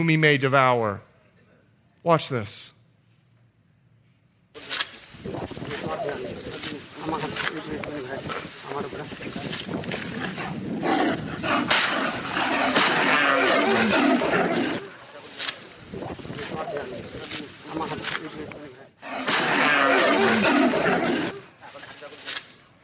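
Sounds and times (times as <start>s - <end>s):
speech: 0.0s - 1.1s, 2.0s - 2.8s, 7.1s - 12.2s, 13.0s - 14.8s, 15.9s - 21.4s
human voices: 4.6s - 22.6s
tiger crouched in grass roaring and snarling: 5.2s - 21.9s.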